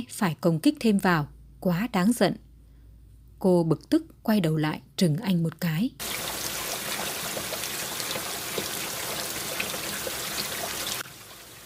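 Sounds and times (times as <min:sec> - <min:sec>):
speech: 0:00.0 - 0:02.4, 0:03.4 - 0:06.4
heavy rain pouring down: 0:06.0 - 0:11.6.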